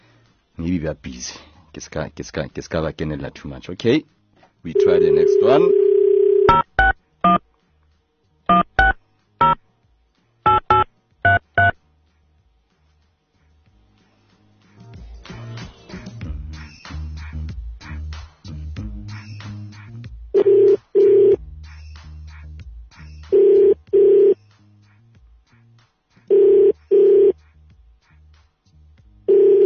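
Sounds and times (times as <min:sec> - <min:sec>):
speech: 0:00.6 - 0:05.8
phone line ringing tones: 0:04.7 - 0:06.7, 0:20.4 - 0:21.4, 0:23.4 - 0:24.4, 0:26.3 - 0:27.3, 0:29.3 - 0:29.6
phone keypad tones dialing a number: 0:04.8 - 0:07.4, 0:08.5 - 0:09.6, 0:10.5 - 0:11.8, 0:29.3 - 0:29.6.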